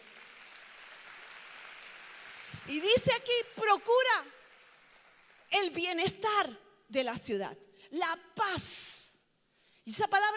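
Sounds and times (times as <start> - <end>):
audience applauding: 0.0 - 3.0, 4.2 - 5.5
speech: 2.6 - 4.4, 5.5 - 8.9, 9.9 - 10.3.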